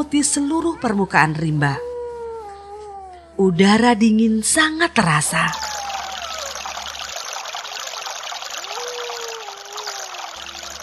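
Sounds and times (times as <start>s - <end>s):
speech: 0.0s - 1.9s, 3.4s - 5.7s
faint high gliding tones: 5.4s - 10.8s
water of a long wide river rushing and babbling: 5.7s - 10.8s.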